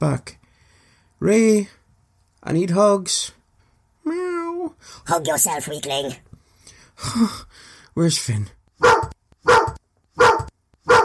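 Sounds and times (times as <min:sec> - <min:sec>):
speech: 0:00.0 - 0:00.4, 0:01.2 - 0:01.8, 0:02.4 - 0:03.4, 0:04.0 - 0:06.3, 0:07.0 - 0:09.0
dog barking at a back door: 0:08.8 - 0:11.0.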